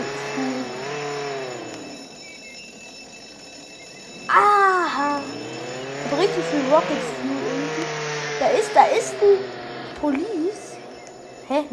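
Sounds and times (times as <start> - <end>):
video game car engine revving as it drives off: 0.0 - 2.0, 4.9 - 11.4
speech: 6.2 - 10.4, 11.5 - 11.7.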